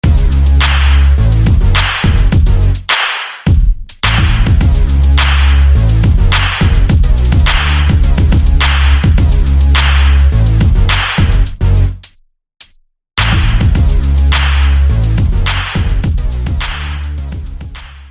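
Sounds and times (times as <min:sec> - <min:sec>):
angry bass: 0:00.0 - 0:02.9, 0:04.0 - 0:12.1, 0:13.2 - 0:18.0.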